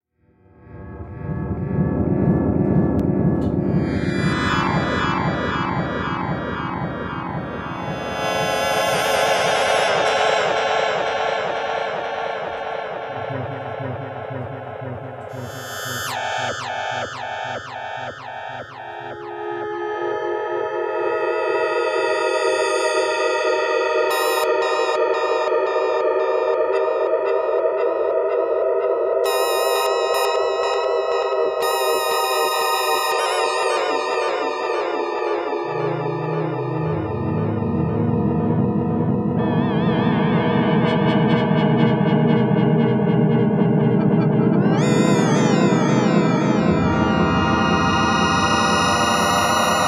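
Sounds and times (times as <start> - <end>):
synthesizer: 0.4 - 49.8.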